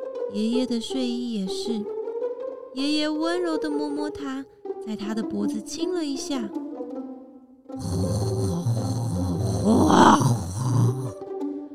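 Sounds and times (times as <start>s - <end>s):
speech: 0.3s - 2.0s, 2.8s - 6.7s
deep rumbling roar with a rough growling texture: 7.8s - 11.1s.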